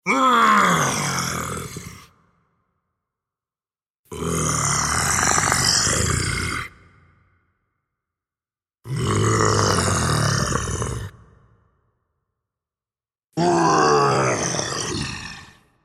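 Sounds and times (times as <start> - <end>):
monster growling: 0.0 - 2.1, 4.1 - 6.8, 8.9 - 11.4, 13.4 - 15.7.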